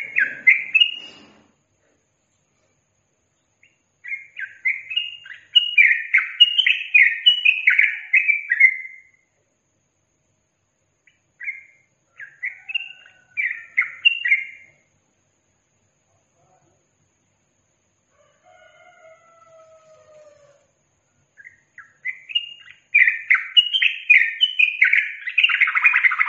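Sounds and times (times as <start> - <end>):
yellow-vented bulbul song in tembakan and ropel styles: 0.0 - 1.4, 3.3 - 9.4, 10.2 - 15.0, 21.2 - 26.2.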